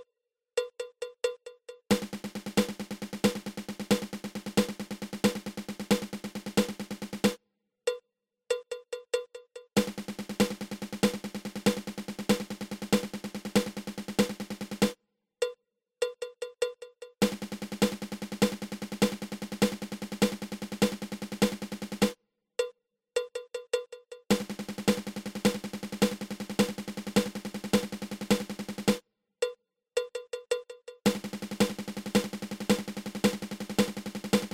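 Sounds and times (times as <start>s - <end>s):
drum paradiddle-diddle: 0.6s - 7.4s, 8.7s - 15.0s, 17.2s - 22.2s, 23.8s - 29.0s, 30.0s - 34.5s.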